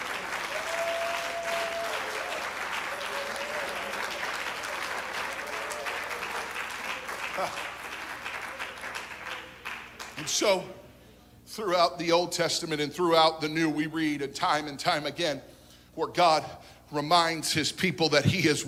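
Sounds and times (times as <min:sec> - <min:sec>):
audience clapping hands: 0:00.0 - 0:10.4
speech: 0:07.4 - 0:07.7, 0:10.3 - 0:10.8, 0:11.6 - 0:18.6.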